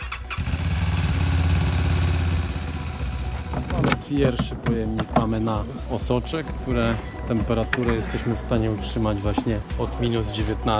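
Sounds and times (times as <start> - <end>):
motorcycle ambulance engine cranking and idling: 0.0 - 4.1
speech: 4.1 - 10.7.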